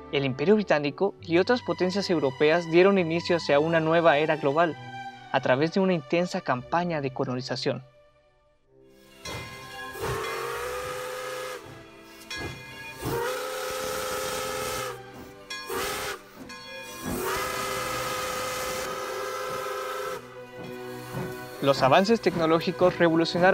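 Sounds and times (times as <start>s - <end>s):
speech: 0.1s - 7.9s, 21.6s - 23.5s
steam engine whistle blasts: 9.0s - 23.5s.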